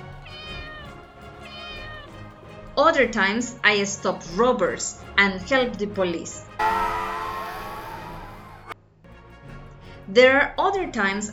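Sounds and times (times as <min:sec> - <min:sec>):
kitten meowing: 0:00.2 - 0:02.1
speech: 0:02.8 - 0:06.8, 0:10.1 - 0:11.3.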